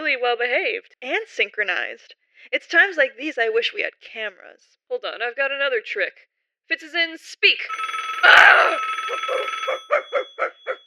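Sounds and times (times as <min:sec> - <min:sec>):
speech: 0:00.1 - 0:10.5
telephone ringing with electronic trill: 0:07.7 - 0:10.8.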